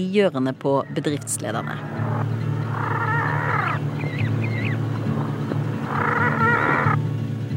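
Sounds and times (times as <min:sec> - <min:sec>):
speech: 0:00.0 - 0:02.1
faint squawks: 0:00.8 - 0:07.0
steady low hum: 0:00.8 - 0:07.5
dying auk's death cries played from a cassette player through a loudspeaker: 0:01.7 - 0:07.1.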